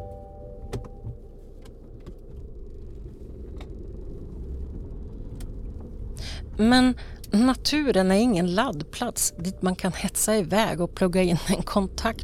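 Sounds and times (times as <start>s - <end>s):
car engine rumble as someone sets off on a drive: 0.0s - 12.2s
speech: 6.6s - 12.2s.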